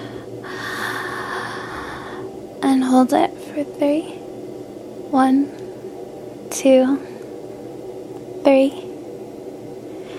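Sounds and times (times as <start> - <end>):
deep breath in: 0.0 - 2.3
speech: 2.6 - 4.2, 5.1 - 5.6, 6.6 - 7.1, 8.4 - 8.8.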